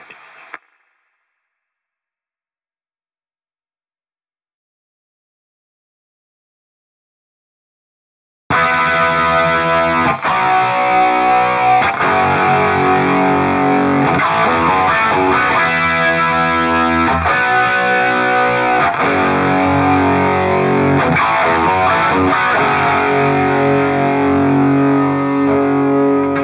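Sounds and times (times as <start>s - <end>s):
doubled guitar intro: 8.5s - 26.4s.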